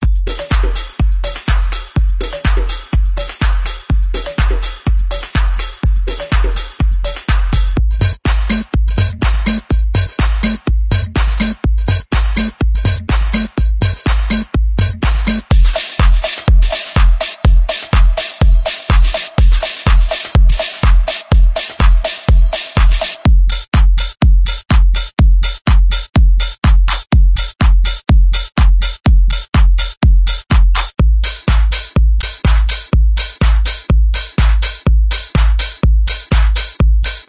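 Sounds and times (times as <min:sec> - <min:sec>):
future deep house drums: 0:00.0 - 0:37.2.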